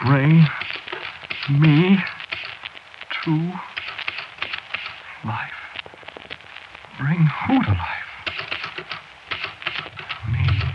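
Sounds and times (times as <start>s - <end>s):
speech: 0.0s - 0.8s, 1.5s - 2.2s, 3.2s - 3.7s, 5.2s - 5.5s, 7.0s - 7.9s
typewriter keys clacking: 0.6s - 2.6s, 3.8s - 5.0s, 8.2s - 10.7s
low rumbling hum: 10.2s - 10.7s.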